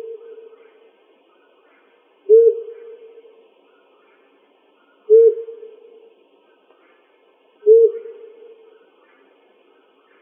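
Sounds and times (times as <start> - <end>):
owl hooting in Arizona: 0.0 - 0.8, 1.7 - 3.3, 5.0 - 6.1, 7.6 - 9.2.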